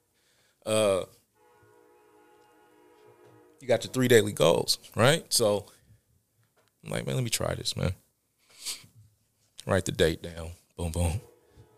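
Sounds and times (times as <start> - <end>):
speech: 0.6 - 1.1, 3.7 - 5.8, 6.8 - 8.0, 9.6 - 11.3
train horn blast at a train station: 1.3 - 4.6, 11.1 - 11.7.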